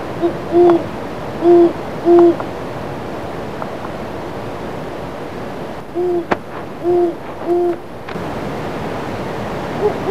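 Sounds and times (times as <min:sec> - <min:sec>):
light background hiss: 0:00.0 - 0:10.0
great horned owl deep muffled hoots: 0:00.2 - 0:02.4, 0:05.9 - 0:07.8
speech: 0:00.2 - 0:02.5.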